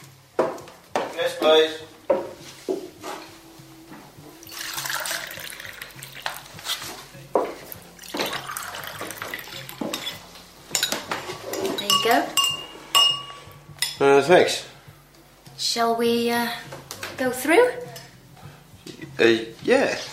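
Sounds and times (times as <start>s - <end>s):
speech: 1.2s - 2.2s, 14.3s - 14.7s, 15.7s - 17.8s, 19.2s - 20.1s
water pouring: 4.4s - 6.7s, 8.0s - 9.8s
spoon clinking and stirring against a ceramic cup while making coffee: 8.0s - 14.0s.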